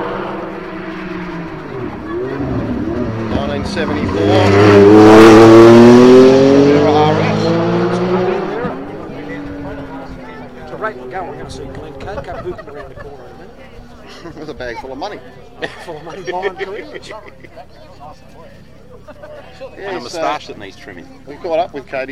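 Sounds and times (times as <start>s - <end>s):
Porsche race car engine roaring past: 0.0s - 14.0s
laughter: 1.7s - 3.1s, 11.2s - 20.5s
speech: 3.6s - 4.9s, 14.8s - 22.1s.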